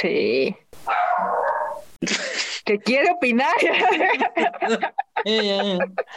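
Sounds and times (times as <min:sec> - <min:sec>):
speech: 0:00.0 - 0:01.4, 0:02.0 - 0:06.1
dog barking: 0:00.9 - 0:01.8
laughter: 0:03.4 - 0:06.1.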